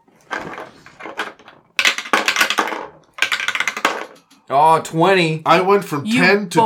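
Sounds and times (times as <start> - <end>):
dice rattling and clattering across a hard surface: 0.4 - 4.4
speech: 4.5 - 6.6.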